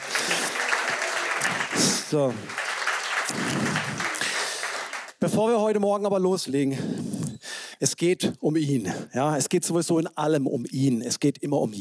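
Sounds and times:
audience applause at a church service: 0:00.0 - 0:05.2
speech: 0:01.8 - 0:02.6, 0:03.3 - 0:03.7, 0:05.2 - 0:07.1, 0:07.8 - 0:11.8.

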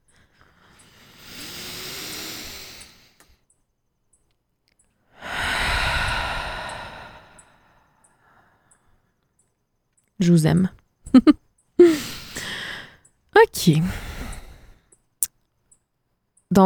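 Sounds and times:
deep breath in: 0:00.4 - 0:03.3, 0:05.2 - 0:08.9, 0:11.8 - 0:13.0, 0:13.8 - 0:14.9
airy exhale: 0:00.5 - 0:03.3, 0:05.2 - 0:08.4, 0:11.8 - 0:13.0
speech: 0:10.2 - 0:11.4, 0:13.5 - 0:14.1
laughter: 0:11.1 - 0:11.9.

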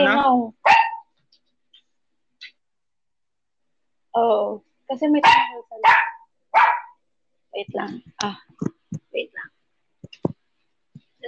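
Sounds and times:
dog barking: 0:00.6 - 0:01.1, 0:05.2 - 0:07.0
speech: 0:04.2 - 0:06.1, 0:07.6 - 0:09.6.

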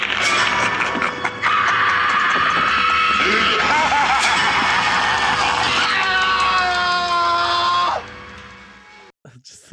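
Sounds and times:
laughter: 0:00.2 - 0:06.0
man's shrill high-pitched scream in a film clip: 0:01.4 - 0:03.9, 0:05.4 - 0:08.0.

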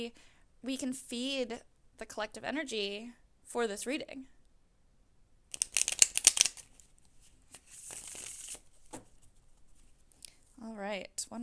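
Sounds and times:
speech: 0:00.0 - 0:04.4, 0:10.6 - 0:11.4
deck of tarot cards being shuffled: 0:05.5 - 0:10.0
tarot cards tapping as they settle: 0:05.6 - 0:06.7.

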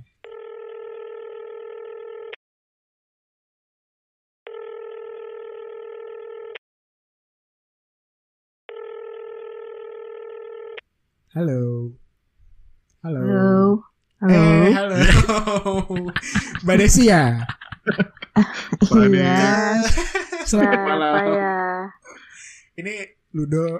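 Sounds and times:
telephone ringback tone: 0:00.3 - 0:02.3, 0:04.5 - 0:06.5, 0:08.7 - 0:10.8
speech: 0:11.4 - 0:12.0, 0:13.0 - 0:22.0, 0:22.8 - 0:23.7
laughter: 0:14.3 - 0:23.1.

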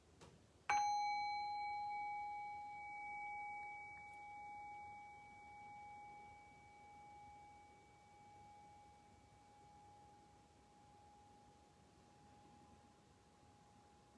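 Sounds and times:
meditation bell ringing: 0:00.7 - 0:08.6.

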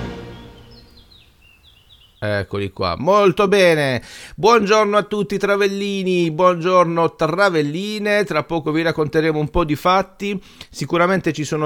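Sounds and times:
small birds chirping faintly: 0:00.0 - 0:02.8
speech: 0:02.2 - 0:11.6.

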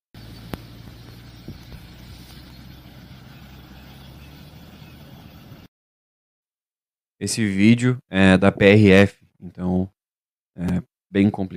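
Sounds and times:
highway road traffic rumble with engine drone: 0:00.2 - 0:05.7
speech: 0:07.2 - 0:10.0, 0:10.6 - 0:11.5.

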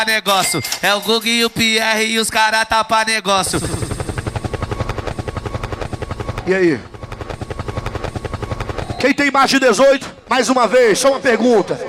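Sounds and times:
speech: 0:00.0 - 0:03.8, 0:06.5 - 0:06.9, 0:09.0 - 0:11.8
helicopter rotor chopping: 0:02.7 - 0:11.8.

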